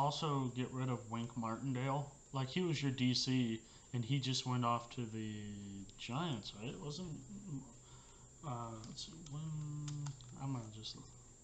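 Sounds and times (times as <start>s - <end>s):
speech: 0.0s - 7.8s, 8.4s - 11.2s
computer keyboard typing with keys clacking: 8.8s - 10.5s.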